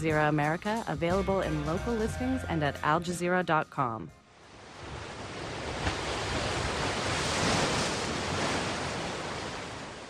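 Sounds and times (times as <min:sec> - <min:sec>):
speech: 0:00.0 - 0:04.2
ocean waves washing onto a beach: 0:04.2 - 0:10.0.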